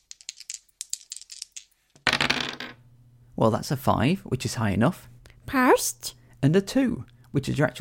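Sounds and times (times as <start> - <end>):
two dice rattling in a cupped hand: 0.0 - 2.6
speech: 3.4 - 7.7.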